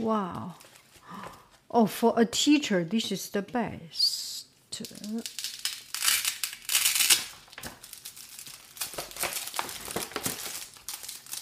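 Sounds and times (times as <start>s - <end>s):
speech: 0.0s - 0.7s, 1.7s - 4.2s, 4.8s - 5.4s
sheets of various kinds of paper rustling and crinkling: 0.0s - 1.5s, 4.9s - 11.3s.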